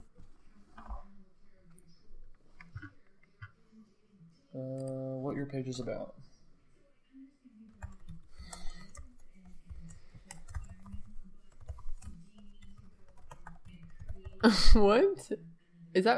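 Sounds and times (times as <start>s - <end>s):
speech: 5.5s - 6.3s, 14.8s - 16.1s
typing on a computer keyboard: 7.7s - 14.5s.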